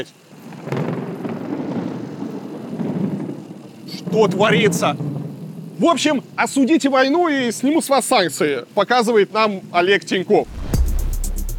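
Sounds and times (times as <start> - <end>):
speech: 0.0 - 0.8, 4.0 - 5.1, 5.8 - 10.6
loud thunderclap rolling into heavy rumble: 0.0 - 7.5, 10.4 - 11.5
rain hissing: 0.0 - 11.5
wind hissing: 0.0 - 11.5.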